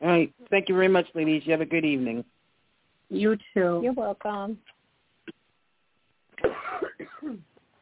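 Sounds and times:
speech: 0.2 - 2.4, 3.1 - 4.8, 6.4 - 7.5
person coughing: 6.4 - 7.5.

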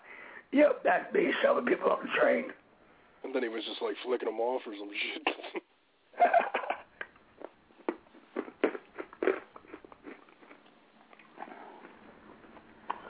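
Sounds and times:
speech: 0.5 - 2.6, 3.2 - 5.6
chewable medicine tablet bitten and chewed: 7.4 - 13.0.

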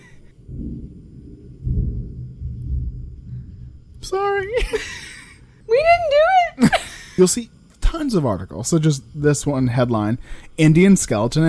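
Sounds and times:
rumble of thunder: 0.0 - 9.2
speech: 4.0 - 5.1, 5.8 - 11.4.

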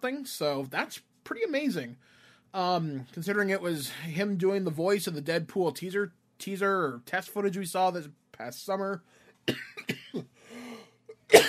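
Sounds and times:
speech: 0.0 - 10.4
sharp harsh coughs: 9.5 - 10.3, 11.2 - 11.4.

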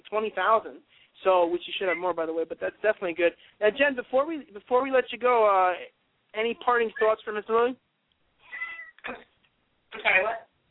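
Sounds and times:
speech: 0.1 - 7.8, 9.0 - 9.3, 9.9 - 10.5
cats meowing: 8.4 - 9.0.

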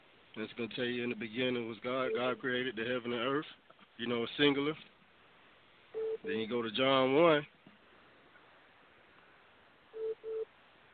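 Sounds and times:
quiet hiss: 0.0 - 10.9
speech: 0.4 - 4.9, 6.2 - 7.6
phone ringing for an incoming call: 6.0 - 6.3, 10.0 - 10.5.

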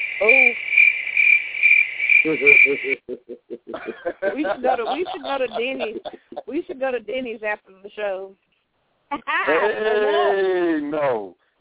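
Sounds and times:
low throaty croaks: 0.0 - 4.1
crickets chirping sound effect: 0.0 - 6.8
speech: 0.2 - 0.6, 2.2 - 8.5, 9.1 - 11.4
laughter: 2.3 - 7.0, 9.2 - 11.2.

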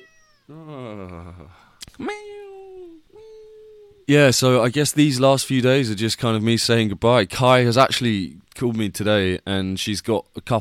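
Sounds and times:
domestic cat meowing for attention: 0.0 - 0.6
speech: 0.5 - 2.4, 4.1 - 10.5.

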